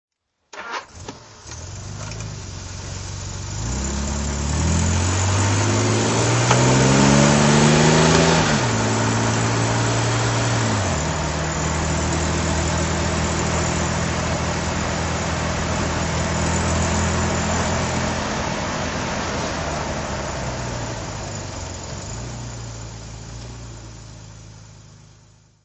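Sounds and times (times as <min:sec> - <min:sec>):
Jaguar XK150 DHC driving: 0:00.6 - 0:25.6.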